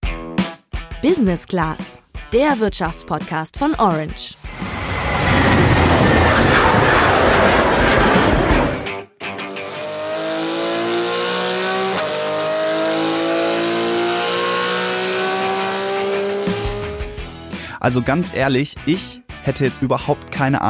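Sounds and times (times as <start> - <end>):
speech: 1.0 - 4.7, 17.8 - 20.6
Porsche 911 GT3 RS sports car engine roaring at high revs: 4.4 - 8.9, 9.5 - 17.3.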